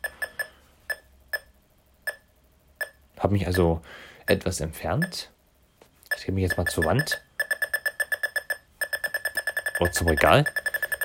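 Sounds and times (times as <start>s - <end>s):
rapid electronic beeps from an obstacle detector: 0.0s - 1.5s, 6.1s - 11.0s
speech: 3.2s - 5.4s, 6.2s - 7.3s, 9.8s - 10.6s.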